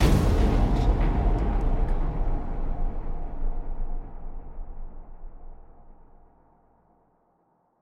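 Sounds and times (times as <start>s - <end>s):
distorted trailer hit: 0.0s - 6.1s.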